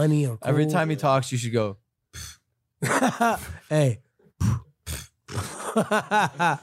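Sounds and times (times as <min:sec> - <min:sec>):
speech: 0:00.0 - 0:04.0, 0:05.4 - 0:06.6
laughter: 0:02.8 - 0:03.6, 0:05.4 - 0:06.6
mouth imitation of a queef: 0:04.4 - 0:05.5.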